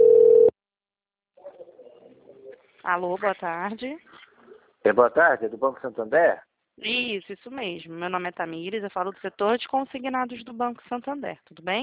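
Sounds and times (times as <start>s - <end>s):
short loud flat-pitched telephone ringback beep: 0.0s - 0.5s
faint murmur: 1.4s - 2.8s
speech: 2.9s - 4.2s, 4.8s - 11.8s.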